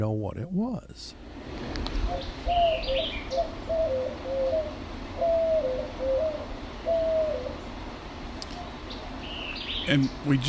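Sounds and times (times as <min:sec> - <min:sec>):
speech: 0:00.0 - 0:04.4, 0:09.9 - 0:10.4
steady hiss: 0:00.0 - 0:10.4
white-winged dove cooing: 0:02.0 - 0:07.8.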